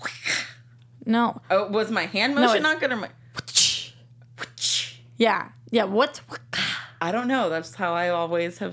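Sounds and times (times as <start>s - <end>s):
low steady hum: 0.0s - 8.7s
speech: 1.1s - 3.2s, 5.2s - 8.7s
voice imitating a whip crack: 3.4s - 5.0s.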